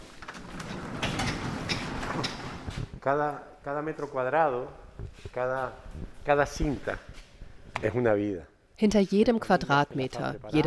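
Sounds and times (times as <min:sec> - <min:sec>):
roller door to an industrial hall rattling open: 0:00.0 - 0:02.9
speech: 0:03.0 - 0:10.6.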